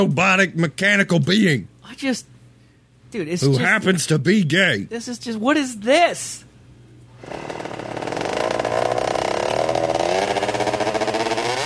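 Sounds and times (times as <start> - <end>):
speech: 0.0 - 2.3, 3.1 - 6.5
small engine starting and revving: 7.2 - 11.6.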